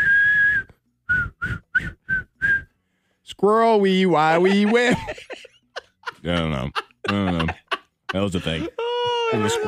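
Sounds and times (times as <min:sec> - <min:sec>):
person whistling a short tune: 0:00.0 - 0:02.8
speech: 0:03.4 - 0:05.3, 0:06.2 - 0:09.6
laughter: 0:04.2 - 0:09.6.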